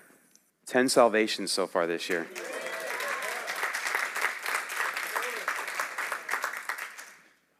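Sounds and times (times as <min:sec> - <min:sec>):
speech: 0:00.7 - 0:02.5
light scattered polite applause from a small crowd: 0:02.1 - 0:07.4.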